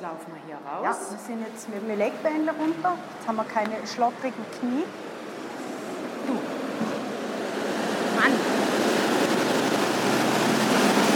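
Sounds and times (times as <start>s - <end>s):
speech: 0.0s - 5.1s
fast-flowing river water rushing: 0.9s - 11.1s.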